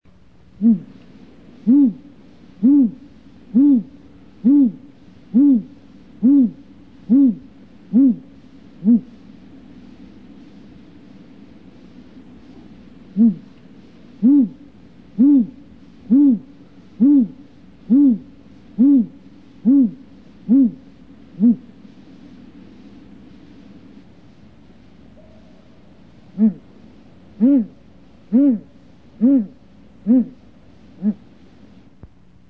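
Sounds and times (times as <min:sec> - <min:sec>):
Great Gray Owl calling in summer: 0:00.6 - 0:01.0, 0:01.6 - 0:09.2, 0:13.1 - 0:13.6, 0:14.2 - 0:21.7, 0:26.3 - 0:26.7, 0:27.4 - 0:30.4, 0:31.0 - 0:31.2.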